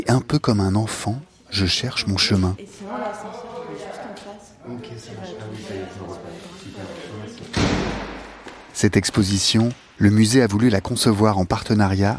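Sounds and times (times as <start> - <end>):
speech: 0.0 - 3.5, 4.7 - 8.1, 8.8 - 12.1
door swinging shut with a loud slam and deep thud: 7.5 - 8.7.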